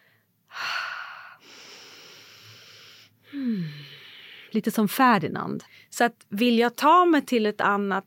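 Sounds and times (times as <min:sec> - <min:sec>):
shallow panting breaths, gasping for air: 0:00.0 - 0:04.5
speech: 0:04.5 - 0:08.0.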